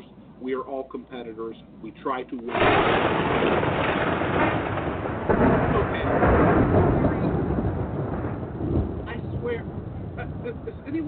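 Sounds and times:
speech: 0.4 - 4.7, 10.5 - 11.0
deep rolling thunder from a rain cloud: 2.5 - 11.0.

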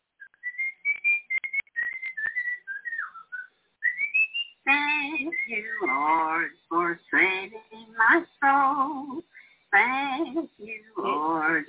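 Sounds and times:
person whistling a lively tune: 0.2 - 4.5
speech: 4.7 - 11.6.

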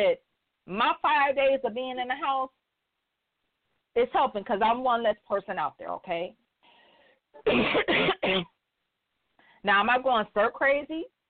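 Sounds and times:
speech: 0.0 - 2.6, 4.0 - 6.4, 7.4 - 8.6, 9.6 - 11.2
loud harsh coughs: 7.4 - 8.6.

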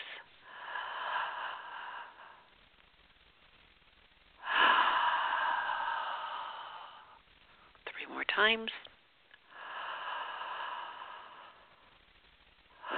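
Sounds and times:
gentle exhale during a guided meditation: 0.0 - 2.5, 4.4 - 7.2, 9.5 - 11.8, 12.8 - 12.9
slow deep breath in during a guided meditation: 0.0 - 2.6, 4.4 - 7.2, 9.4 - 12.0, 12.8 - 12.9
speech: 8.4 - 8.9.

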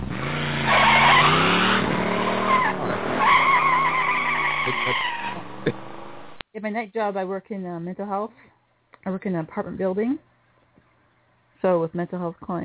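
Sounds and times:
car engine revving: 0.0 - 6.4
car tires screeching: 0.0 - 6.4
speech: 6.6 - 10.3, 11.6 - 12.6.

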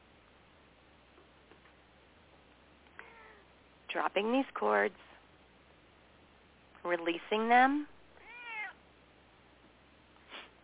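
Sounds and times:
quiet hiss: 0.0 - 10.6
pet cat meowing: 3.0 - 3.4, 8.2 - 8.8
speech: 3.9 - 5.1, 6.8 - 7.9.

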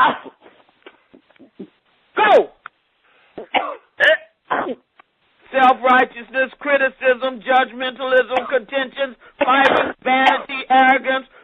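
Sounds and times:
harsh coughs during a prayer to cast out spirits: 0.0 - 0.6, 3.4 - 4.8, 9.4 - 10.6
speech: 2.2 - 2.5, 5.6 - 11.4.

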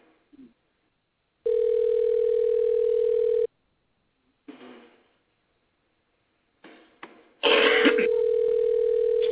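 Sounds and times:
outgoing telephone call electronic ring tones: 1.5 - 3.5, 8.0 - 9.2.

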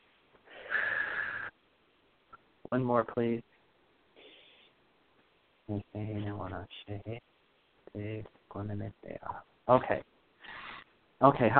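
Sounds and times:
deep breath in through the nose and out through the mouth: 0.4 - 1.6
speech: 2.7 - 3.5, 5.7 - 7.3, 7.9 - 10.1, 11.2 - 11.5.

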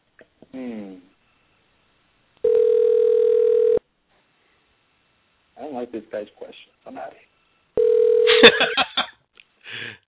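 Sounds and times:
telephone tone while calling back a dropped call: 2.4 - 3.8, 7.8 - 8.4
speech: 5.9 - 7.3, 8.4 - 8.8.

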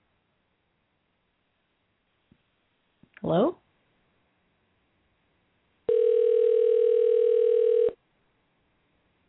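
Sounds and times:
speech: 3.3 - 3.6
outgoing phone call ringing tone: 5.9 - 8.0.

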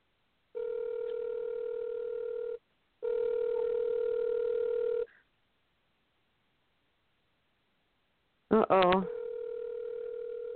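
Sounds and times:
outgoing phone call ringback tone: 0.6 - 5.1, 9.0 - 10.5
speech: 8.5 - 9.2.

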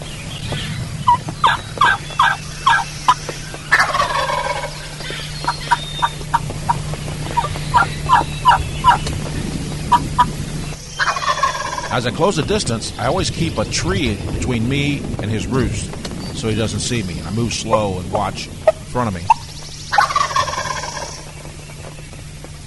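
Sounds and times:
rolling turkey gobble: 0.0 - 13.9, 17.2 - 22.6
low steady hum: 0.0 - 22.6
hunter making turkey hen yelps and clucks with calls: 1.1 - 9.1, 9.9 - 12.0, 18.6 - 21.5
speech: 12.0 - 19.4.

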